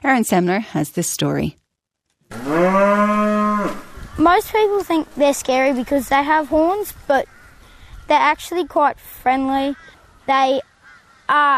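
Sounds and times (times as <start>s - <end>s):
speech: 0.0s - 1.6s, 2.5s - 7.3s, 8.1s - 10.7s, 11.3s - 11.5s
Texas Longhorn cow mooing: 2.3s - 3.9s.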